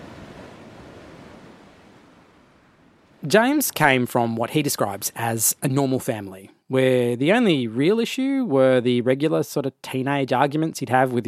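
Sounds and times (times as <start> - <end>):
ocean surf waves breaking on shore: 0.0 - 5.0
speech: 3.2 - 11.2.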